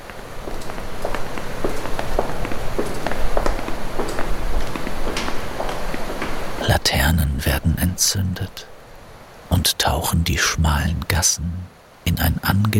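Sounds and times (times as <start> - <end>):
footsteps echoing on a hard surface at walking pace: 0.0 - 6.5
soft continuous hiss of noise: 0.0 - 12.7
speech: 8.1 - 8.7, 9.6 - 12.7.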